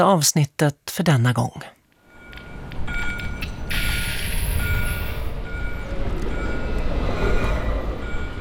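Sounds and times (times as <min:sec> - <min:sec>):
speech: 0:00.0 - 0:01.8
tram rattling on tracks: 0:02.1 - 0:08.3.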